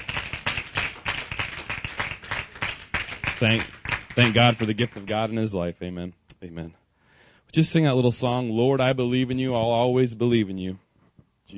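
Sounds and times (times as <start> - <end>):
audience clapping: 0.0 - 5.4
speech: 3.4 - 6.8, 7.5 - 10.8.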